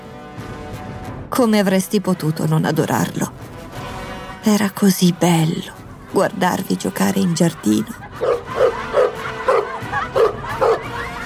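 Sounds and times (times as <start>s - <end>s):
speech: 1.4s - 3.6s, 4.4s - 8.5s
laughter: 5.9s - 11.2s
dog barking playfully: 8.1s - 10.8s.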